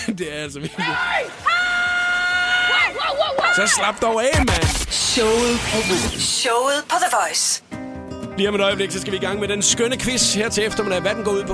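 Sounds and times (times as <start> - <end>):
laughter: 0.0 - 1.5
speech: 0.2 - 1.8, 2.9 - 7.7, 8.4 - 11.5
woman screaming excitedly: 0.8 - 3.8
woman yelling: 0.8 - 3.8.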